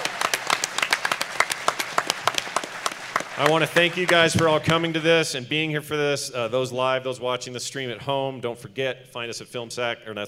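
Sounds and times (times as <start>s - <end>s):
live audience applause with many hands clapping: 0.0s - 5.2s
speech: 3.4s - 10.2s.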